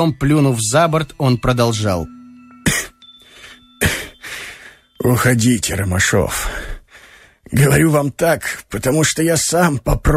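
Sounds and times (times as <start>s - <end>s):
speech: 0.0s - 2.2s, 5.0s - 6.7s, 7.5s - 10.1s
man coughing in a prolonged fit: 2.6s - 3.0s, 3.8s - 4.2s.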